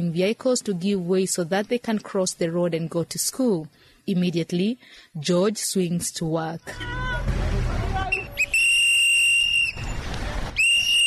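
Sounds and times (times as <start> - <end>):
speech: 0.0 - 7.4
low rumble of street noise in a Kampala suburb: 0.0 - 11.0
traffic warden blowing a whistle to stop motorists: 8.1 - 10.0, 10.6 - 11.0.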